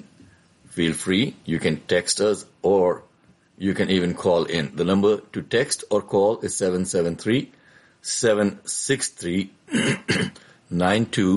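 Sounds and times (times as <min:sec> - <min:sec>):
speech: 0:00.8 - 0:11.3
man clearing his throat with a frog in his throat: 0:09.7 - 0:10.6.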